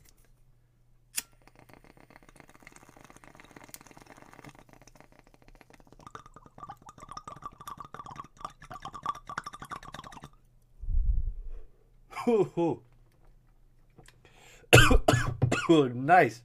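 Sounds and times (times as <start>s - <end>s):
speech: 12.2s - 12.9s, 15.7s - 16.4s
harsh raspy throaty coughing: 14.7s - 15.8s.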